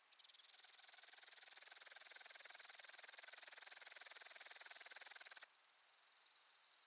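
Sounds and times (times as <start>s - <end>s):
upland green bush-cricket Tettigonia cantans trilling: 0.2s - 5.5s.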